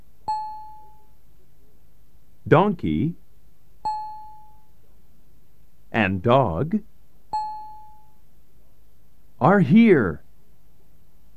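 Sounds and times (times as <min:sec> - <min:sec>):
doorbell chime ringing at a front door: 0:00.3 - 0:01.1, 0:03.9 - 0:04.7, 0:07.4 - 0:08.2
speech: 0:02.5 - 0:03.2, 0:06.1 - 0:06.9, 0:09.4 - 0:10.2.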